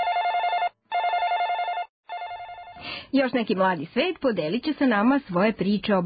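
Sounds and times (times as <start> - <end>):
telephone ringing: 0.0 - 2.9
speech: 3.0 - 6.0.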